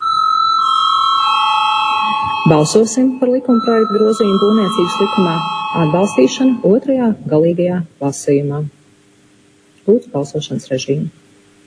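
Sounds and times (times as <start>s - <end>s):
electronic parliament bell ringing to call members to a vote: 0.0s - 6.9s
speech: 2.4s - 8.8s, 9.9s - 11.2s.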